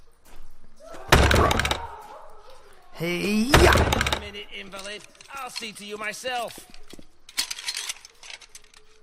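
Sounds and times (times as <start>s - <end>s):
heavy cell door slam: 1.1s - 1.9s, 3.5s - 4.3s
speech: 1.4s - 1.8s, 3.0s - 6.8s.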